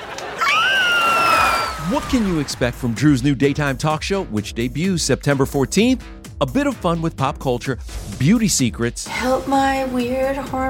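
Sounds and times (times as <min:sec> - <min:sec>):
group of people screaming excitedly: 0:00.3 - 0:02.3
speech: 0:01.9 - 0:10.6.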